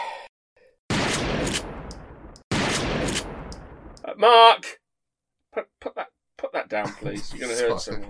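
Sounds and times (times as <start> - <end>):
gunfire sound effect bursts: 0.9 - 4.0
speech: 4.1 - 4.8, 5.5 - 6.0, 6.7 - 8.0.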